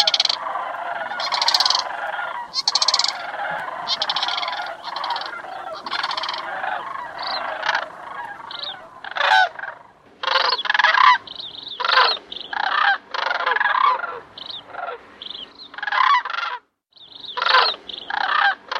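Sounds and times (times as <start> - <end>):
sandhill crane calls: 0.0 - 16.6.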